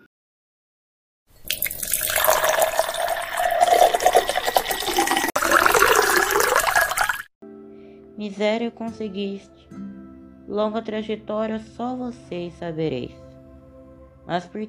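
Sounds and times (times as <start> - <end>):
fresh water pouring into a glass from a clay filter: 1.4 - 7.3
speech: 8.2 - 9.9, 10.5 - 13.2, 14.3 - 14.6.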